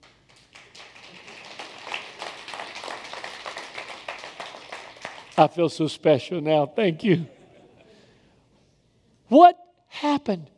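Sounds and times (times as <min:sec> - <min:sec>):
audience clapping: 0:00.0 - 0:05.8
speech: 0:05.4 - 0:07.4, 0:09.3 - 0:10.5.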